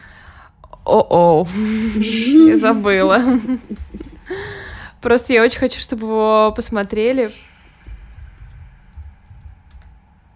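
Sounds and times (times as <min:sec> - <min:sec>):
speech: 0:00.9 - 0:04.4, 0:05.0 - 0:07.5
laughter: 0:01.6 - 0:04.4
typing on a computer keyboard: 0:08.1 - 0:10.0.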